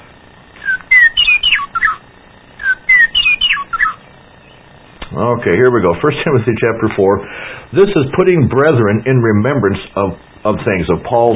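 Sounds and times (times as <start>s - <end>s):
meadowlark singing outdoors on a sunny day: 0.6s - 2.0s, 2.6s - 4.7s
speech: 5.2s - 11.3s.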